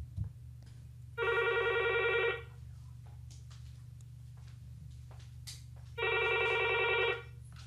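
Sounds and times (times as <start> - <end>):
steady low hum: 0.0 - 7.6
telephone ringing for an incoming call: 1.2 - 2.5, 6.0 - 7.4.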